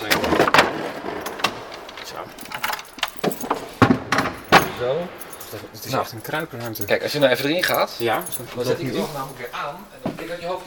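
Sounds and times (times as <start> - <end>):
sharp metallic knocks and rattles of a small organ hatch being opened: 0.0 - 8.6
faint noise: 0.0 - 10.6
key scraping and clicking in the lock of a small organ hatch: 1.1 - 5.6, 6.2 - 8.6
speech: 4.8 - 10.6.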